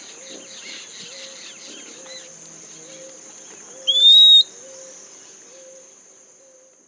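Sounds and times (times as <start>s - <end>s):
bird giving a single clear high whistle: 3.8s - 4.9s.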